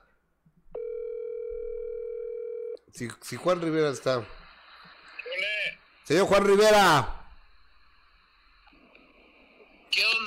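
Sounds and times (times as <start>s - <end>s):
telephone tone during dialing of a call: 0.8s - 2.8s
speech: 2.9s - 4.4s, 6.1s - 7.2s, 9.9s - 10.2s.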